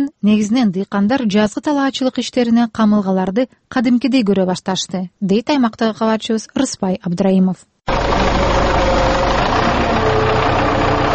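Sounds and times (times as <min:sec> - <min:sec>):
speech: 0:00.0 - 0:08.3
tractor engine running during spring fieldwork in farmland of the Jalal-Abad region: 0:07.9 - 0:11.1.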